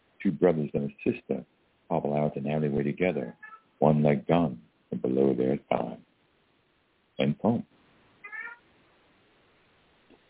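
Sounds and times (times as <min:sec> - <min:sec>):
speech: 0:00.2 - 0:06.1, 0:07.2 - 0:07.8
cat meowing: 0:03.1 - 0:03.7, 0:08.2 - 0:08.6.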